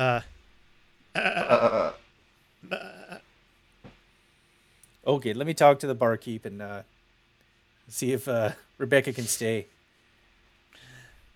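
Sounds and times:
person imitating sheep bleat: 0.0 - 0.3, 1.1 - 2.0, 2.6 - 3.2
speech: 0.0 - 0.4, 1.2 - 2.0, 5.1 - 6.9, 7.9 - 9.7.

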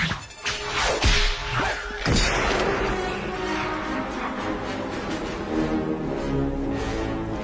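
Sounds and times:
dense sustained music: 0.0 - 7.4
whip crack: 0.5 - 2.9.

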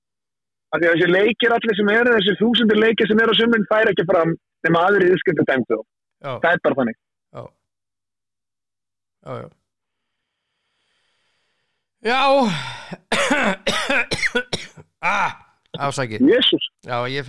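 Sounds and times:
speech: 0.7 - 7.6, 9.2 - 9.6, 12.0 - 17.2
throaty voiced gasps: 12.4 - 13.1
person having a coughing fit: 12.8 - 15.3.

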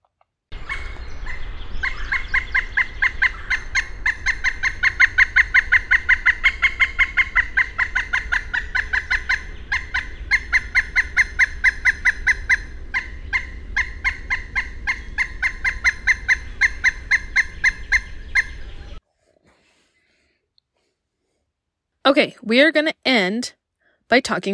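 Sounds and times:
pileated woodpecker call notes: 0.5 - 19.0
speech: 22.1 - 24.5.

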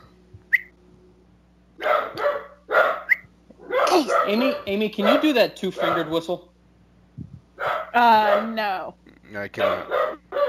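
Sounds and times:
steady low hum: 0.0 - 10.4
dog barking at a sprite while backing up: 1.8 - 6.2, 7.6 - 8.6, 9.6 - 10.4
speech: 4.0 - 6.5, 8.0 - 10.2.

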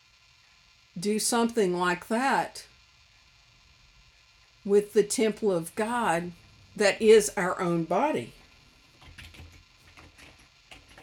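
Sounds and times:
speech: 1.0 - 2.7, 4.6 - 8.4
typing on a computer keyboard: 9.0 - 11.0.

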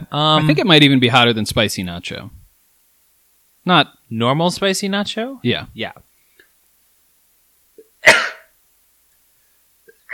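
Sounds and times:
speech: 0.1 - 2.4, 3.6 - 6.0
person coughing and gagging after eating a spicy chip: 8.0 - 8.5.

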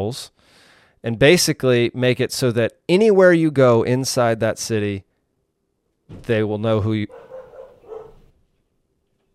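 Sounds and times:
speech: 0.0 - 5.1, 6.1 - 7.2
dogs barking: 7.1 - 8.3.

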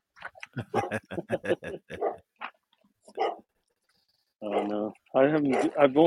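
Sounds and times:
laughter: 0.4 - 2.2
speech: 0.6 - 1.8, 5.4 - 6.0
dog barking: 2.0 - 2.2, 3.1 - 3.5, 4.4 - 4.8, 5.5 - 5.8.

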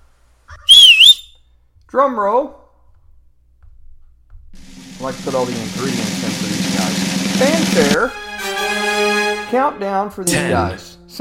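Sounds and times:
person whistling at guests in a studio: 0.7 - 1.3
speech: 1.9 - 2.6, 5.0 - 6.5, 7.4 - 8.2, 8.8 - 11.1.

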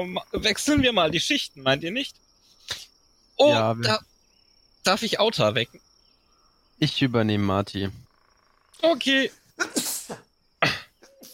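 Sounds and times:
speech: 0.0 - 2.8, 3.4 - 4.1, 4.8 - 5.9, 6.8 - 8.0, 8.8 - 10.8
person sneezing: 9.6 - 11.3
person sniffing: 9.6 - 11.3.

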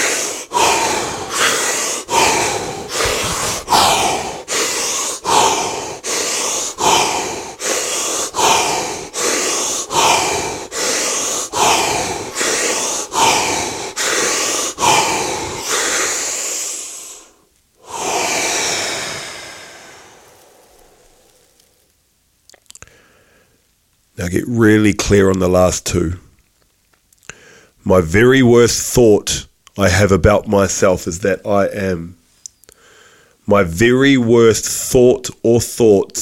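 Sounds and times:
deep breathing during a breathing exercise: 0.0 - 22.0, 22.8 - 23.6, 27.2 - 27.8, 32.7 - 33.4
speech: 24.3 - 26.2, 27.9 - 32.2, 33.5 - 36.2.

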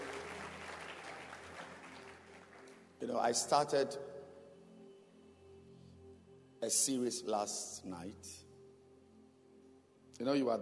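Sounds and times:
audience clapping hands during a church service: 0.0 - 3.3
speech: 3.0 - 4.2, 6.6 - 8.5, 10.2 - 10.6.

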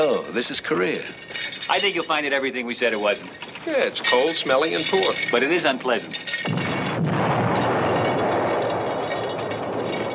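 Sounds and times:
speech: 0.0 - 6.6
artillery fire from both sides at the front in Korea: 6.5 - 10.1.

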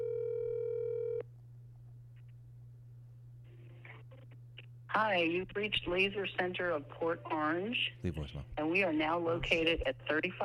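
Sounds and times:
telephone ringing tone on an unanswered outgoing call: 0.0 - 1.2
speech: 4.9 - 10.4.

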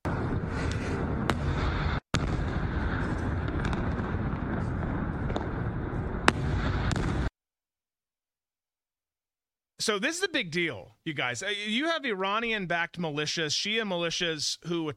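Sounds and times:
explosions from a missile strike: 0.0 - 7.3
speech: 9.8 - 14.9.

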